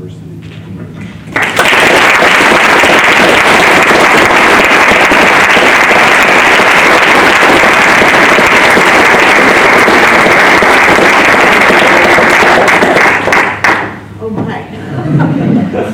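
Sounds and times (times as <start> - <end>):
large university audience applause welcoming a lecturer: 1.3 - 14.0
laughter: 14.8 - 15.9.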